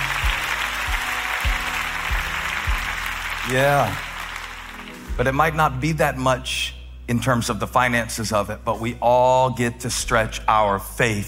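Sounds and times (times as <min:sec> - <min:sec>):
dense crowd clapping: 0:00.0 - 0:05.3
speech: 0:03.4 - 0:04.1, 0:05.2 - 0:11.2.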